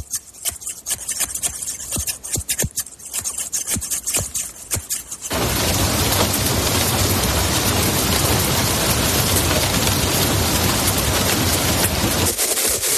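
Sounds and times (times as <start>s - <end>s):
hairdresser scissors snipping: 0.0s - 5.3s
steady loud rain: 5.3s - 12.8s.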